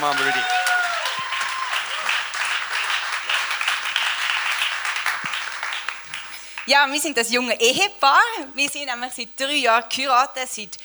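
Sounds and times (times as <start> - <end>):
audience applause: 0.0 - 6.7
speech: 6.7 - 10.8.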